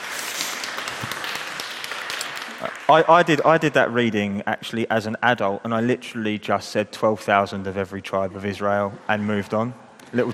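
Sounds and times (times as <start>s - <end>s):
audience applauding: 0.0s - 3.7s
speech: 2.6s - 10.3s.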